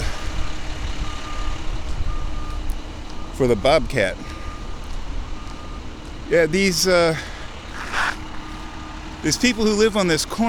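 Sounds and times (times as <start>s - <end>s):
dump truck reversing beep: 0.0s - 7.3s
public works dump truck with flatbed trailer engine rumbling on a residential street: 0.0s - 10.4s
speech: 3.4s - 4.3s, 6.3s - 7.3s, 9.2s - 10.4s.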